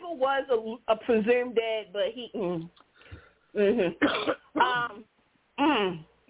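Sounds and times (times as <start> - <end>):
speech: 0.1 - 2.8, 3.5 - 6.1
person clearing throat: 3.8 - 5.0.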